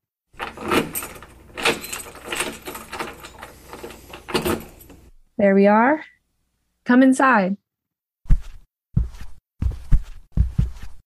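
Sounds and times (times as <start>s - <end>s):
door being opened: 0.4s - 5.1s
metallic rattles and clunks of door latch and handle: 0.4s - 5.1s
speech: 5.4s - 6.1s, 6.9s - 7.6s.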